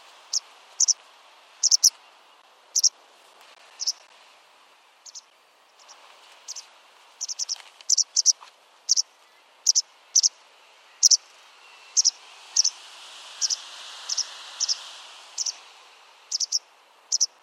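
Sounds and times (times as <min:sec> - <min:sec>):
white wagtail calls: 0:00.0 - 0:01.0, 0:01.6 - 0:02.0, 0:02.7 - 0:03.0, 0:03.8 - 0:04.1, 0:05.0 - 0:15.7, 0:16.3 - 0:17.4
steady soft hiss: 0:00.0 - 0:17.4.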